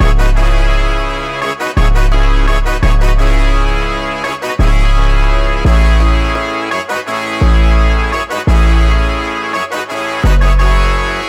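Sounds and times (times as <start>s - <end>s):
melody loop in C sharp minor: 0.0s - 11.2s.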